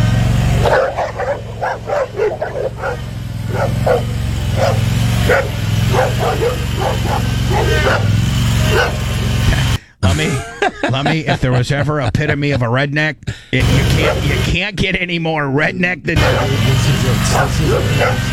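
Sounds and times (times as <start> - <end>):
lawn mower steady low engine drone: 0.0 - 9.9, 13.6 - 14.6, 16.2 - 18.3
dogs barking and yipping around a lawn mower: 0.3 - 9.8, 13.6 - 14.5, 16.2 - 18.3
laughter: 4.8 - 12.8, 13.6 - 14.5, 16.2 - 18.3
speech: 11.1 - 18.3.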